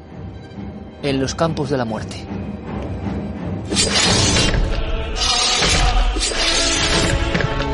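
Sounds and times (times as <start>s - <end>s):
speech: 1.0s - 4.4s
heavy guillotine metal blade dropping with a crash: 3.7s - 7.6s.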